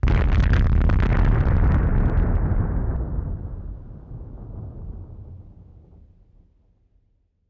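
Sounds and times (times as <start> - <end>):
atomic explosion: 0.0 - 5.4.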